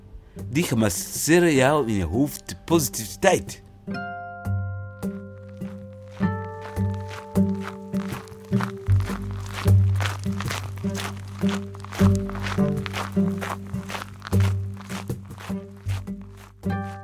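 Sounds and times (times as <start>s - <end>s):
soft sustained music: 0.0s - 17.0s
speech: 0.4s - 4.1s
footsteps of a man walking outdoors crunching: 5.0s - 17.0s.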